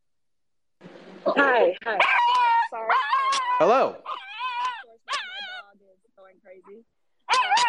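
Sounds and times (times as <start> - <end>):
speech: 1.2 - 2.3, 3.6 - 4.1
small male dog yapping: 1.4 - 5.6, 7.2 - 7.6.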